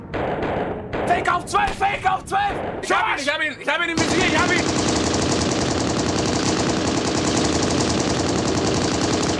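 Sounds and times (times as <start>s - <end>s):
rapid automatic gunfire from a video game: 0.1s - 1.4s, 4.0s - 9.3s
speech: 1.4s - 4.7s.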